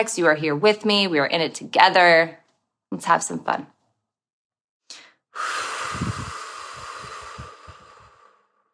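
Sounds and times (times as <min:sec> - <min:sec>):
speech: 0:00.0 - 0:03.8
deep breath inhaled and exhaled: 0:04.9 - 0:08.7.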